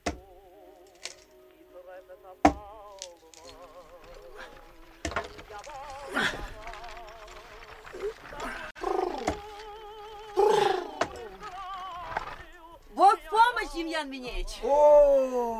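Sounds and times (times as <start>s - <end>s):
axe splitting firewood: 0.0s - 0.3s, 0.9s - 1.3s, 2.4s - 3.6s, 4.2s - 6.5s, 8.8s - 9.7s, 10.4s - 12.5s
speech: 5.5s - 6.6s, 13.0s - 15.5s.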